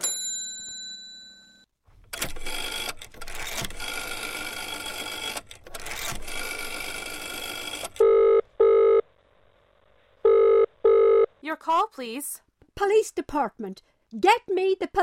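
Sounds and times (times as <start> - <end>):
mechanical whirring and clicking from a telephone dial: 2.0 - 9.0
short steady electronic tones on the telephone line: 8.0 - 9.0, 10.2 - 11.3
speech: 11.6 - 15.0.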